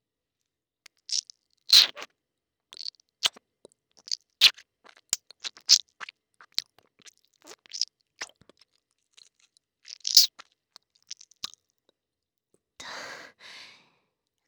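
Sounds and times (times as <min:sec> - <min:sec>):
person chewing semen with wet smacking mouth sounds: 0:00.9 - 0:02.1, 0:02.8 - 0:11.6.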